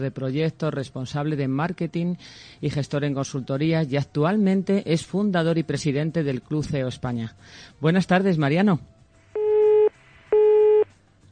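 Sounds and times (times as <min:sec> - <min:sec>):
speech: 0:00.0 - 0:08.9
telephone busy tone after dropped call: 0:09.4 - 0:10.9.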